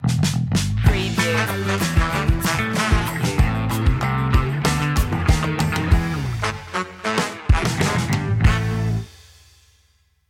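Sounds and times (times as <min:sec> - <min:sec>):
hot funky groove stinger: 0:00.8 - 0:09.1.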